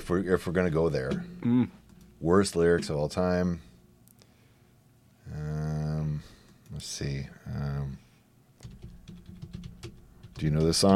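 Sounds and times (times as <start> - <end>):
speech: 0.1 - 3.7, 6.8 - 8.0, 10.4 - 10.9
rapid typing on a computer keyboard: 8.6 - 10.9.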